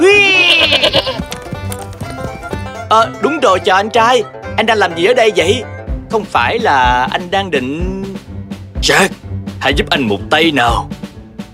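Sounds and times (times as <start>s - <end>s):
goat bleating: 0.2s - 1.4s
speech: 2.9s - 8.0s, 8.8s - 11.0s.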